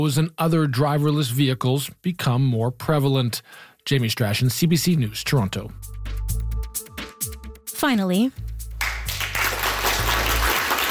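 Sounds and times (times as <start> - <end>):
speech: 0.0 - 6.4, 7.8 - 8.4
applause from a viewing party at the University of Toronto: 8.8 - 10.8.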